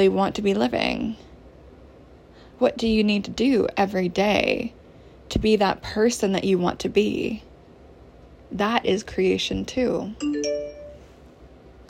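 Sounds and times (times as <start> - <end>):
speech: 0.0 - 1.3, 2.6 - 7.5, 8.5 - 10.8
computer notification chime: 10.2 - 11.1.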